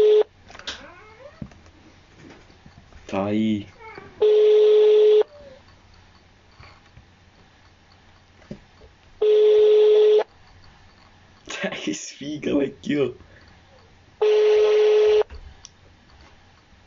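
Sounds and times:
phone line ringback tone: 0:00.0 - 0:00.3, 0:04.2 - 0:05.3, 0:09.2 - 0:10.3, 0:14.2 - 0:15.3
speech: 0:03.1 - 0:04.4, 0:12.4 - 0:13.3.

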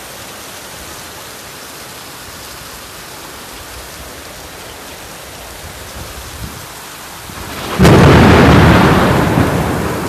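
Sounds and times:
heavy rain during a storm: 0:00.0 - 0:10.0
loud thunderclap rolling into a long deep rumble: 0:07.3 - 0:10.0.

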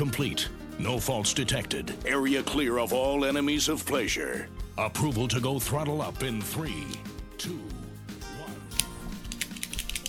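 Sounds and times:
speech: 0:00.0 - 0:07.7
cigar cutter snipping the cap off a cigar: 0:06.8 - 0:07.1, 0:08.7 - 0:10.0.

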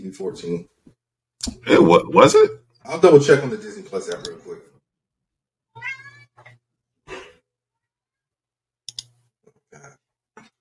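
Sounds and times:
speech: 0:00.0 - 0:00.8, 0:01.4 - 0:04.7
cat meowing: 0:05.7 - 0:06.6.

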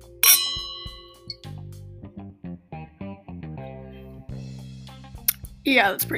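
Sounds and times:
glasses clinking in a toast: 0:00.2 - 0:01.4
short rhythmic tonal notes: 0:00.2 - 0:01.5
speech: 0:05.6 - 0:06.1.

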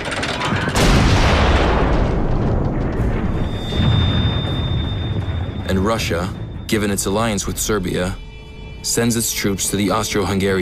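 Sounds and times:
artillery cannon blast: 0:00.6 - 0:06.7
deep rumbling boom: 0:00.8 - 0:08.2
speech: 0:05.8 - 0:08.2, 0:08.8 - 0:10.5.

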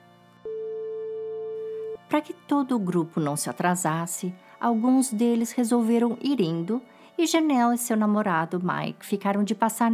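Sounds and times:
steady electronic phone tone: 0:00.4 - 0:02.1
speech: 0:02.1 - 0:09.9.

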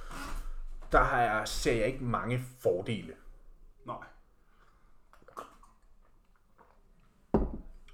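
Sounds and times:
speech: 0:00.9 - 0:03.2, 0:03.8 - 0:04.1
wet mouth sounds: 0:05.1 - 0:07.2
person gulping water: 0:05.1 - 0:07.9.

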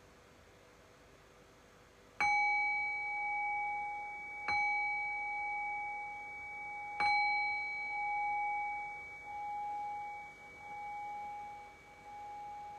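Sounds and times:
meditation bell chiming: 0:02.2 - 0:12.7.

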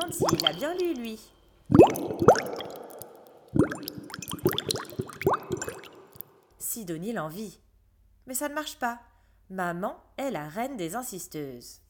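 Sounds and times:
voice imitating blowing bubbles with wet mouth pops: 0:00.0 - 0:01.1, 0:01.7 - 0:06.4
speech: 0:00.1 - 0:02.8, 0:06.8 - 0:07.6, 0:08.3 - 0:11.8.

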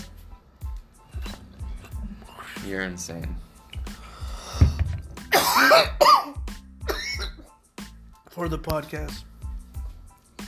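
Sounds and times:
speech: 0:02.6 - 0:03.5, 0:05.8 - 0:06.2, 0:08.4 - 0:09.3
harsh hacking coughing fit after a smoke hit: 0:05.2 - 0:07.5.

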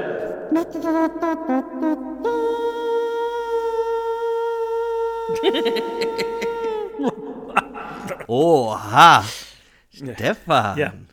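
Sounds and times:
speech: 0:00.5 - 0:02.6, 0:05.3 - 0:07.2, 0:08.1 - 0:09.4, 0:10.0 - 0:11.0
voice making a nasal trumpet imitation: 0:00.5 - 0:07.0
laughter: 0:05.3 - 0:08.3.

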